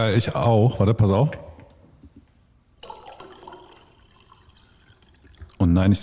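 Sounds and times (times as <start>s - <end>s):
speech: 0.0s - 1.5s, 5.8s - 6.0s
sparkling tap water pouring: 2.8s - 5.7s.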